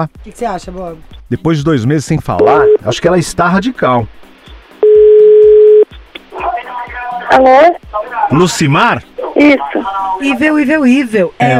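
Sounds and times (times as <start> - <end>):
speech: 0.0 - 4.3, 7.3 - 11.5
telephone ringing tone: 2.4 - 2.8, 4.8 - 5.8.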